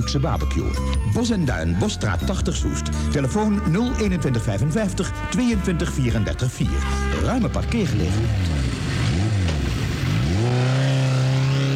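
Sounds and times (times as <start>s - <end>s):
speech: 0.0s - 8.6s
motorcycle engine revving: 6.8s - 11.7s.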